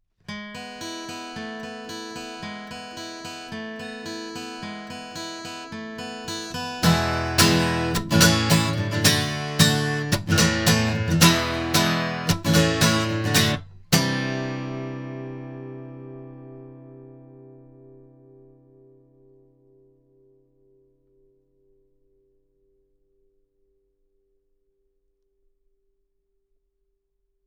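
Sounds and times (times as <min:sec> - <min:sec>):
guitar: 0:00.2 - 0:23.8.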